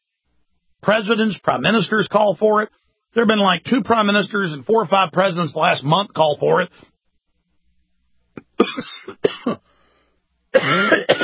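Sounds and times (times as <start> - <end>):
speech: 0.8 - 6.9, 8.6 - 9.6, 10.5 - 11.2
person clearing throat after inhaling a piece of spinach: 8.4 - 9.7, 10.6 - 11.2
person coughing after inhaling a piece of spinach while eating: 8.4 - 9.7, 10.6 - 11.2.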